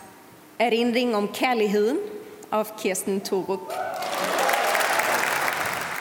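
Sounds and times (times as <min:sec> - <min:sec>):
speech: 0:00.6 - 0:04.2
large audience applauding at a literature prize award ceremony: 0:03.9 - 0:05.9.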